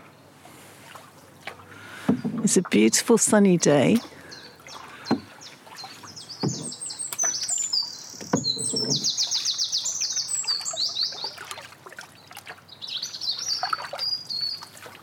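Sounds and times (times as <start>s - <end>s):
canoe paddle splashes on calm canal water: 0.3s - 15.0s
canal water sloshing and dripping: 0.4s - 15.0s
knocks of a small paddled boat: 1.4s - 2.8s, 5.1s - 5.4s, 6.3s - 7.5s, 8.1s - 9.4s
robin singing: 2.1s - 11.5s, 12.2s - 14.8s
speech: 2.4s - 4.2s.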